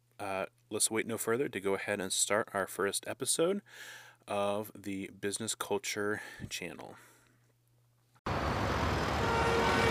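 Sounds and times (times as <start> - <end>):
speech: 0.2 - 7.1
rush hour road traffic roar: 8.3 - 9.9.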